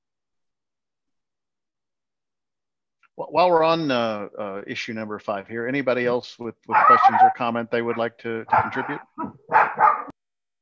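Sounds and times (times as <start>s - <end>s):
speech: 3.2s - 10.0s
dog barking: 6.7s - 10.2s.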